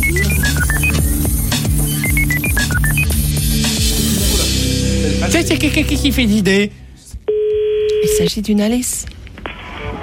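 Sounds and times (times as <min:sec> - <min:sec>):
electronic telephone keypad dialing tones: 0:00.0 - 0:01.0, 0:01.9 - 0:03.1
dense steady musical bed: 0:00.0 - 0:07.0
speech: 0:05.4 - 0:06.8, 0:08.1 - 0:09.2.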